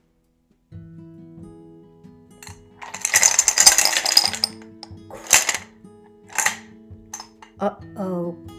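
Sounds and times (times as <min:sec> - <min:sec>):
toy airplane crashing into dishes in an open cabinet: 0:02.4 - 0:05.7, 0:06.3 - 0:07.6.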